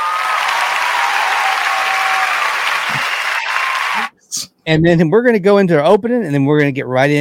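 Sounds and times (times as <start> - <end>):
crowd applauding: 0.0 - 4.1
speech: 4.3 - 7.2.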